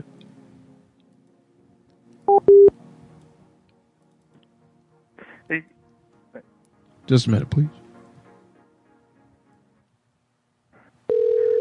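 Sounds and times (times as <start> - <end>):
cell phone electronic keypad beeps while dialing: 2.3 - 2.7
speech: 5.5 - 6.5, 7.1 - 7.8.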